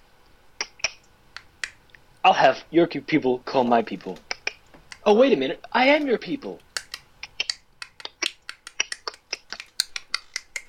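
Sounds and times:
sharp finger snaps: 0.6 - 2.0, 4.2 - 5.1, 6.6 - 10.6
speech: 2.3 - 4.2, 5.0 - 6.6.

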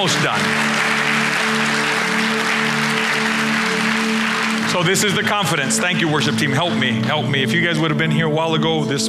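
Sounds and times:
speech: 0.0 - 0.7, 4.7 - 9.0
congregation applauding: 0.0 - 7.1.

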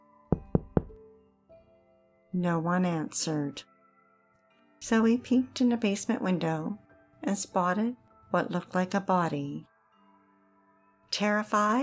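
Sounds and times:
knocking on a wooden front door: 0.3 - 1.0
speech: 2.3 - 3.7, 4.8 - 9.7, 11.1 - 11.8.

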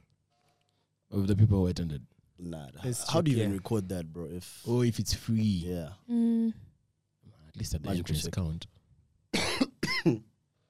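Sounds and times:
speech: 1.1 - 6.7, 7.6 - 8.8, 10.0 - 10.3
dry coughs: 9.3 - 10.3.

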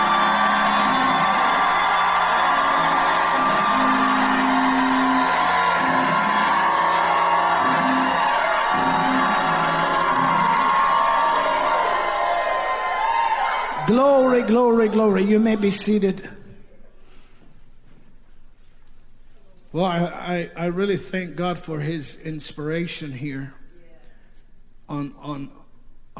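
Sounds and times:
audience at a worship service shouting, whooping and cheering: 0.0 - 16.1
speech: 14.0 - 16.4, 19.8 - 23.6, 24.9 - 25.6.

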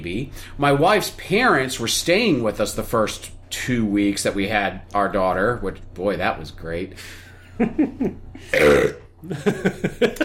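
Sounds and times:
speech: 0.0 - 10.2
short voiced grunts: 8.5 - 9.1
long rumbling burp: 8.5 - 9.2
laughter: 9.2 - 10.2.

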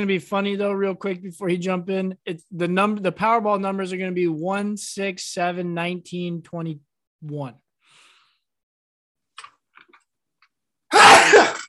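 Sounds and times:
speech: 0.0 - 7.6
single loud sneeze: 10.9 - 11.6.

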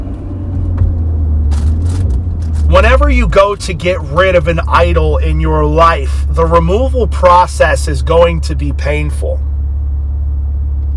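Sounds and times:
car driving down the road: 0.0 - 10.9
speech: 2.7 - 9.5.

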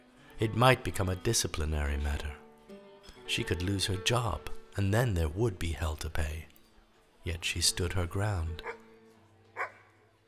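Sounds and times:
speech: 0.4 - 2.4, 3.3 - 6.5, 7.2 - 8.8
dog barking softly with a plaintive tone: 8.6 - 8.8, 9.6 - 9.9.

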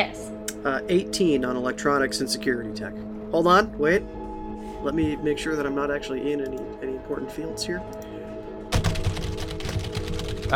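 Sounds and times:
speech: 0.0 - 4.2, 4.8 - 8.0
computer keyboard typing sound effect: 8.7 - 10.5.

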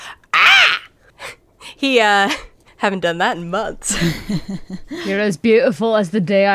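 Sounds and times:
person imitating gull cry: 0.0 - 0.9
speech: 1.8 - 6.5.

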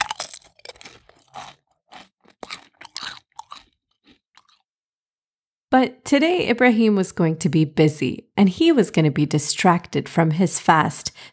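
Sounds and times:
crunching of snack food: 0.0 - 4.7
speech: 5.7 - 11.3.

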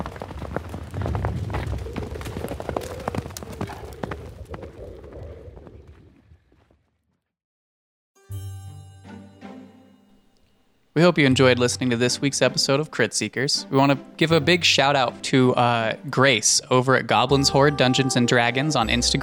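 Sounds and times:
galloping horse hooves pounding along a road: 0.0 - 6.8
music: 8.2 - 19.2
speech: 11.0 - 19.2.

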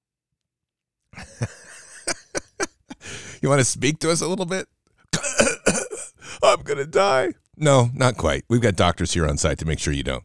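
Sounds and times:
laughter: 1.2 - 3.8
speech: 3.4 - 4.7, 6.6 - 10.2
person coughing out water: 5.2 - 6.6.

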